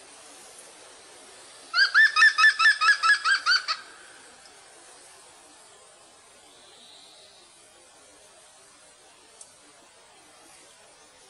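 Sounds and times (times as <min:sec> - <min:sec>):
European green woodpecker laughing call: 0:01.8 - 0:04.0.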